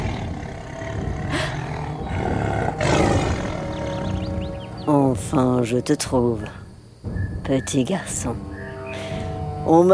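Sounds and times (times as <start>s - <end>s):
tiger low growl: 0.0s - 4.1s
tiger roaring: 0.0s - 4.1s
speech: 5.2s - 6.6s, 7.5s - 9.9s.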